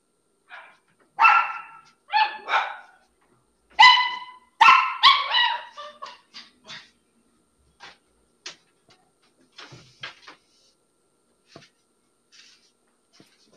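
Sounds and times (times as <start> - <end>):
small dog yipping: 0.5 - 3.0, 3.8 - 6.9.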